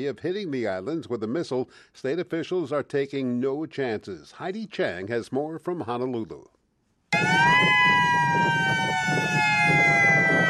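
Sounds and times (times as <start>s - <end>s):
speech: 0.0s - 6.6s, 7.2s - 10.1s
attack warning siren wailing in Hawaii: 7.2s - 10.4s.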